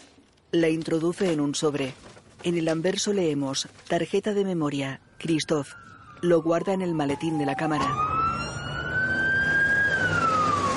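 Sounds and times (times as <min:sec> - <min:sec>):
speech: 0:00.5 - 0:08.2
steady rumble of street traffic: 0:04.8 - 0:10.7
ambulance siren wailing as it speeds past in street: 0:05.1 - 0:10.7.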